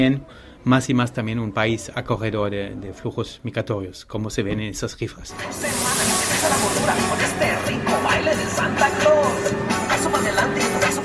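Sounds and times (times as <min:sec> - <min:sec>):
speech: 0:00.0 - 0:09.6
moving metro train rail rumble and hiss in Mexico City: 0:05.5 - 0:10.2.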